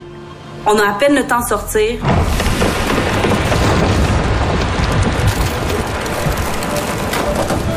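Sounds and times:
speech: 0:00.6 - 0:02.4
deep booming rumbles of house swept away by overflowing river: 0:02.0 - 0:07.7
wooden stilt house crushed by flood, grinding and splintering timber: 0:02.1 - 0:07.7.

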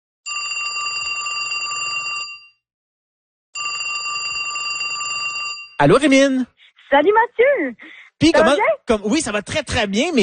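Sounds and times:
telephone bell ringing: 0:00.3 - 0:02.6, 0:03.6 - 0:05.8
speech: 0:05.8 - 0:10.2.

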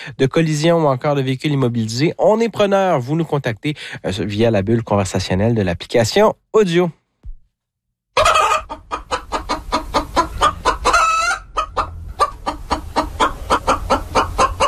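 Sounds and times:
speech: 0:00.0 - 0:07.0
flock of chickens clucking: 0:08.2 - 0:14.6
rooster crowing: 0:08.2 - 0:14.6.

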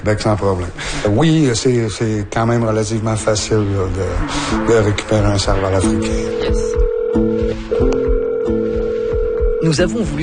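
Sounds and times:
speech: 0:00.0 - 0:07.3, 0:09.7 - 0:10.2
telephone ringing tone on a call: 0:06.1 - 0:10.1.

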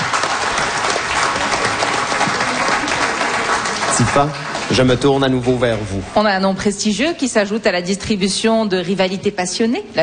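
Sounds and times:
audience applause: 0:00.0 - 0:06.0
speech: 0:04.2 - 0:10.0.

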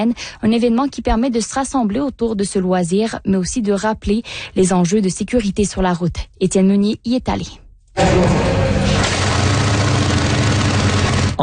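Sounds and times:
speech: 0:00.0 - 0:08.4
motorcycle engines revving: 0:08.0 - 0:11.4.

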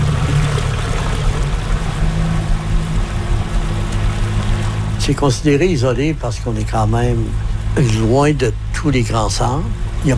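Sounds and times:
motorboat engine hum in an island archipelago: 0:00.0 - 0:10.1
rushing wash of spray and waves: 0:00.0 - 0:10.1
speech: 0:05.1 - 0:10.1.

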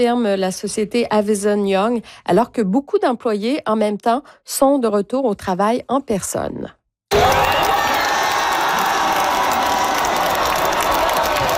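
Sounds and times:
speech: 0:00.0 - 0:07.6
large crowd cheering and applauding at a football fan festival after a win: 0:07.1 - 0:11.5.

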